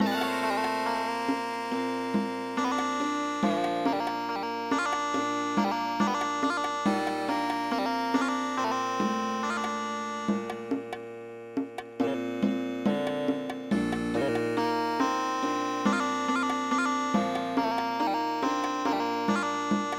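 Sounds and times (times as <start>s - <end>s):
Indian traditional MIDI music: 0.0s - 19.9s.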